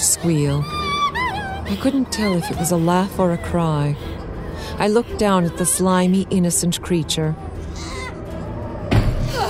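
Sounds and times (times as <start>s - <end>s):
speech: 0.2s - 0.8s, 1.7s - 7.9s
bedroom door slamming: 8.9s - 9.4s.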